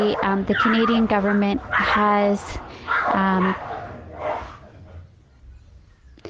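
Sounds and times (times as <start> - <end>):
speech: 0.0 - 3.7
dog yelping bark: 0.0 - 4.7
dogs barking: 0.0 - 6.0.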